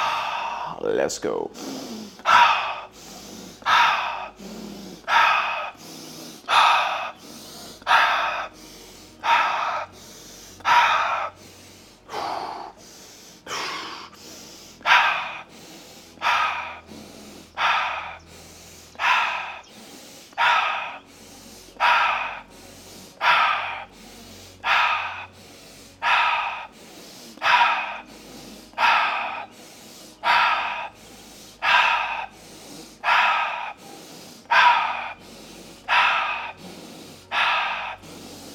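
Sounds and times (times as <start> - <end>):
rapid rhythmic breathing, inhaling through nose and exhaling through mouth: 0.0 - 38.5
speech: 0.8 - 2.5.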